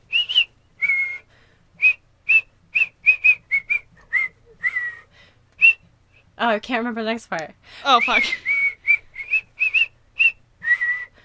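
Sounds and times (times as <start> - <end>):
person whistling a song melody: 0.1 - 5.8, 8.0 - 11.2
speech: 6.4 - 8.5.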